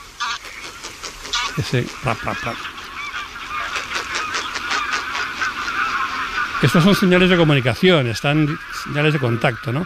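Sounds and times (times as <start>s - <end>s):
flock of greylag geese honking at takeoff: 0.0s - 9.8s
speech: 1.6s - 2.8s, 6.6s - 9.8s.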